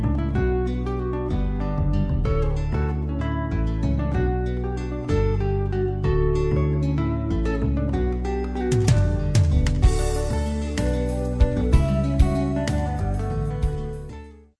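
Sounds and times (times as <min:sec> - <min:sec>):
pop music: 0:00.2 - 0:14.2.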